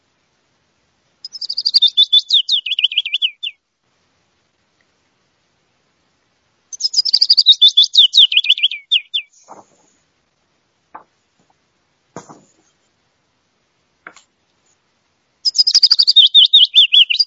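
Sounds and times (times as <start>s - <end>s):
male willow warbler singing: 1.2s - 3.6s, 6.7s - 9.9s, 15.4s - 17.2s.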